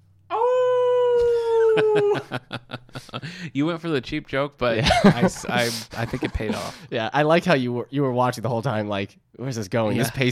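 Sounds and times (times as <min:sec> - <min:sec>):
human voice imitating a werewolf howl: 0:00.3 - 0:02.3
laughter: 0:01.3 - 0:03.4, 0:04.8 - 0:06.8
speech: 0:01.8 - 0:10.3.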